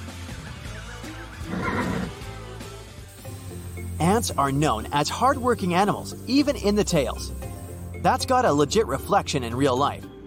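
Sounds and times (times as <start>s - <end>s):
horse neighing: 1.4s - 2.2s
speech: 4.0s - 7.4s, 8.0s - 10.1s.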